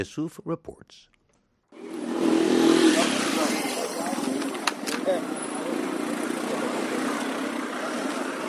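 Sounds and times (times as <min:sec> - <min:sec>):
speech: 0:00.0 - 0:01.2, 0:05.1 - 0:05.5
busy city street traffic in Kenya's capital city: 0:01.7 - 0:08.4
motorcycles in Kenya's capital city street traffic: 0:01.8 - 0:08.4.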